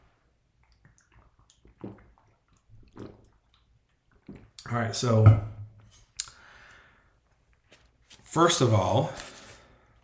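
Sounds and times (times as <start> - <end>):
person gulping water: 0.0 - 6.4
speech: 1.8 - 2.0, 4.7 - 5.5, 8.4 - 9.3.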